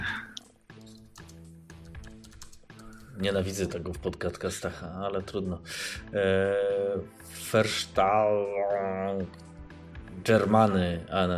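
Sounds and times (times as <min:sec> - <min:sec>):
typing on a computer keyboard: 0:00.8 - 0:03.1
speech: 0:03.2 - 0:09.5, 0:10.2 - 0:11.3.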